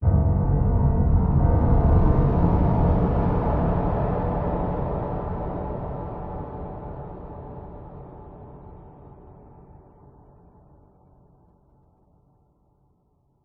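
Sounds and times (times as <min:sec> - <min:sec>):
dark ominous scary horror hit: 0:00.0 - 0:08.4.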